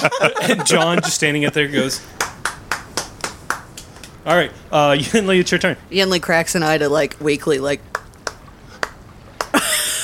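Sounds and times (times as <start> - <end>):
laughter: 0.0 - 2.1, 9.4 - 10.0
speech: 0.0 - 2.3, 4.2 - 8.0
soft weak hand clapping: 2.2 - 4.2, 7.9 - 9.8.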